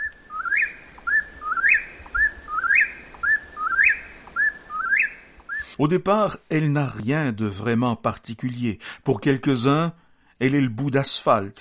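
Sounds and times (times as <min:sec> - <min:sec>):
birds chirping in large residential street trees: 0:00.0 - 0:05.8
speech: 0:05.8 - 0:11.5.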